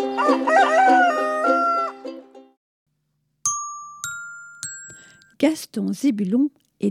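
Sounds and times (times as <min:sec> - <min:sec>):
rooster crowing: 0:00.2 - 0:02.1
bright ringing chime dings: 0:03.5 - 0:05.4
speech: 0:05.4 - 0:06.8.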